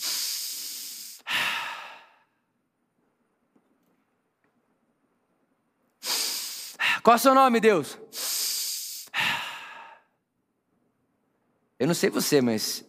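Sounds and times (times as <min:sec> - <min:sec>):
slow deliberate breathing in and out: 0:00.0 - 0:02.5, 0:06.0 - 0:07.1, 0:08.1 - 0:10.2
speech: 0:07.0 - 0:08.3, 0:11.8 - 0:12.8.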